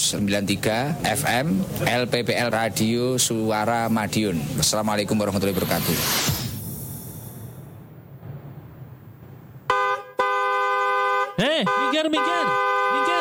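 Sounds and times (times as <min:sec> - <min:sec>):
low traffic rumble: 0:00.0 - 0:13.1
speech: 0:00.1 - 0:06.4
car horn honking: 0:09.7 - 0:13.1.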